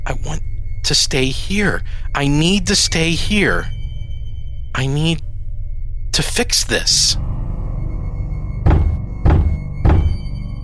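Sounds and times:
low rumbling background: 0:00.0 - 0:10.6
speech: 0:00.1 - 0:03.8, 0:04.8 - 0:05.3, 0:06.2 - 0:07.3
fist banging on drywall: 0:08.7 - 0:10.3.

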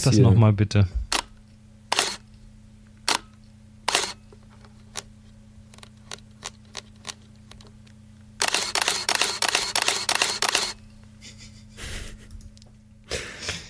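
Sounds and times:
speech: 0:00.0 - 0:01.0
SLR camera shutter releases: 0:01.9 - 0:02.2, 0:03.0 - 0:03.3, 0:03.9 - 0:04.2, 0:08.4 - 0:10.8
rapid motor-driven burst of SLR shutter firing: 0:01.9 - 0:02.2, 0:03.0 - 0:04.2, 0:08.4 - 0:10.8.

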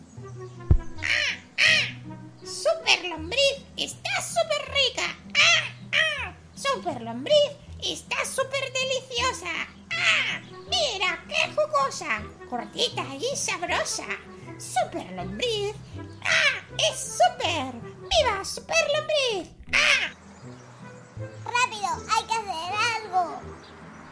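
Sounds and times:
low musical backing: 0:00.0 - 0:24.1
crow cawing on a tree branch at night: 0:00.9 - 0:02.1, 0:05.3 - 0:06.4, 0:16.2 - 0:16.7, 0:19.6 - 0:20.2
speech: 0:06.9 - 0:08.4, 0:12.0 - 0:18.8.

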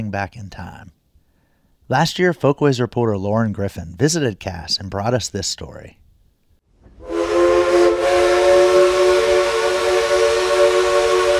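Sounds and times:
speech: 0:00.0 - 0:01.0, 0:01.9 - 0:06.0
1920s Heisler steam locomotive whistle as the train departs: 0:07.0 - 0:11.3.

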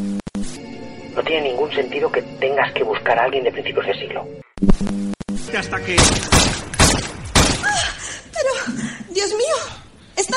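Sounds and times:
speech: 0:01.2 - 0:06.5, 0:08.7 - 0:10.3
gunshots: 0:06.0 - 0:07.9.

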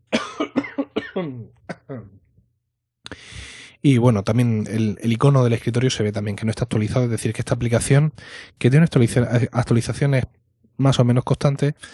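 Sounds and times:
person coughing in harsh bursts: 0:00.1 - 0:02.2
speech: 0:01.2 - 0:02.2, 0:03.8 - 0:11.9.

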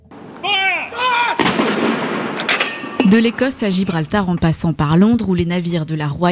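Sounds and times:
drawn-out tonal call: 0:00.4 - 0:01.4
single loud ceremonial salute cannon blast: 0:01.3 - 0:03.9
speech: 0:03.1 - 0:06.3.

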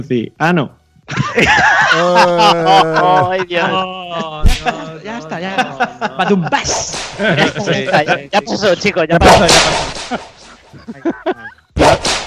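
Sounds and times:
people chatting: 0:00.0 - 0:10.0
speech: 0:00.0 - 0:12.2
laughter: 0:01.1 - 0:11.8
whip cracks: 0:06.8 - 0:07.2, 0:09.2 - 0:10.4, 0:11.8 - 0:12.2.

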